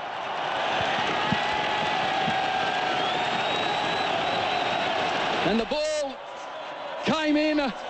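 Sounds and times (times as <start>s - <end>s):
huge stadium crowd cheering after a goal in a football match: 0.0s - 7.8s
whistles from a stadium crowd: 2.6s - 5.1s
speech: 5.4s - 5.9s.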